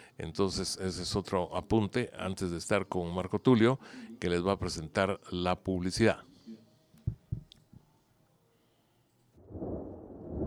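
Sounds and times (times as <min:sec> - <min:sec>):
speech: 0:00.2 - 0:06.3
deep dull thumps: 0:07.1 - 0:07.5
broad low thunder rumble: 0:09.4 - 0:10.4.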